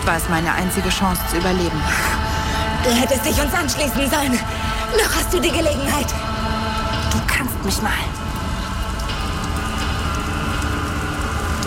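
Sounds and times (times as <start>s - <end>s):
steady rain pattering on hard surfaces: 0.0s - 11.6s
speech: 0.1s - 2.2s, 2.8s - 6.3s, 7.4s - 8.2s.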